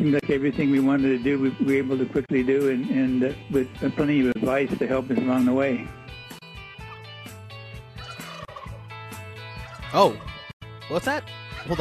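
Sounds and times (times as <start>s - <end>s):
speech: 0.0s - 6.0s, 9.9s - 10.3s, 10.9s - 11.7s
flock of turkeys gobbling: 6.7s - 7.1s, 8.0s - 10.5s, 11.5s - 11.7s.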